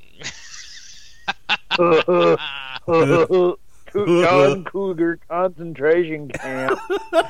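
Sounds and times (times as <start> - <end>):
laughter: 0.2 - 4.6, 6.4 - 7.2
person imitating a goat bleat: 1.8 - 4.7
speech: 1.8 - 7.2.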